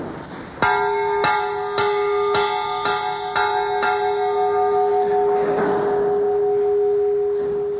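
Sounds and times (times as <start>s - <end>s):
large historic bell ringing: 0.6s - 7.7s.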